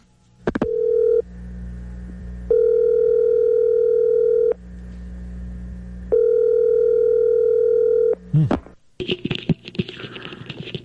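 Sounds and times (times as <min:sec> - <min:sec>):
noisy telephone line: 0:00.4 - 0:01.3, 0:02.5 - 0:04.6, 0:06.1 - 0:10.8
long steady telephone ringback tones: 0:00.6 - 0:01.2, 0:02.5 - 0:04.6, 0:06.1 - 0:08.2.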